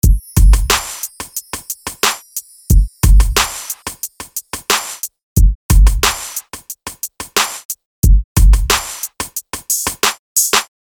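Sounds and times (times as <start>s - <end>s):
R&B drum kit: 0.0s - 10.7s.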